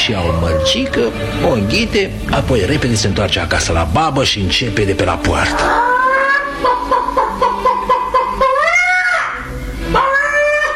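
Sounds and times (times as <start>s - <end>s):
speech: 0.1s - 5.9s
voice imitating a hen cackling: 5.6s - 10.7s.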